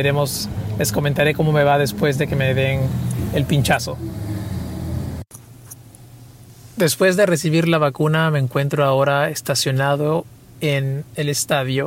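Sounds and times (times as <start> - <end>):
speech: 0.0 - 4.3, 6.8 - 11.8
car engine idling in a vaccination queue: 0.0 - 5.3.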